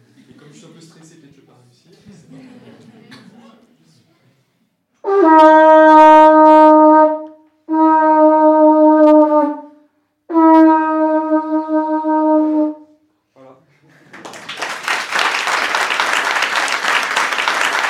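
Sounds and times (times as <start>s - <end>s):
laughter: 1.9s - 4.1s, 13.8s - 14.6s
conch shell blown like a horn: 5.0s - 12.9s
clapping and applause: 13.9s - 17.8s.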